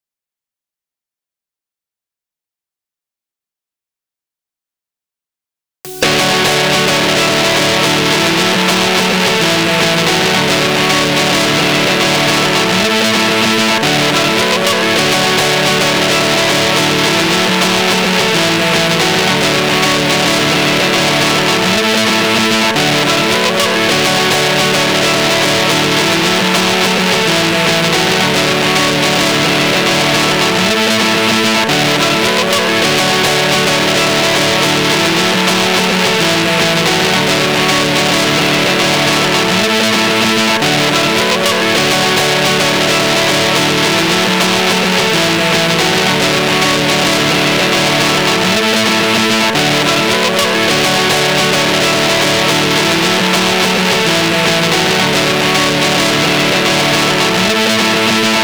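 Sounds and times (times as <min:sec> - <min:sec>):
guitar chords: 0:05.9 - 0:58.4.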